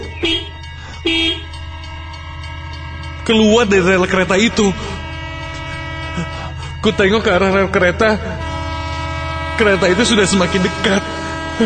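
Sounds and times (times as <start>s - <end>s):
motorcycle horn honking loudly: 0.0s - 1.6s, 4.8s - 7.8s, 8.4s - 11.6s
speech: 1.0s - 1.4s, 3.3s - 5.0s, 6.2s - 8.5s, 9.6s - 11.6s.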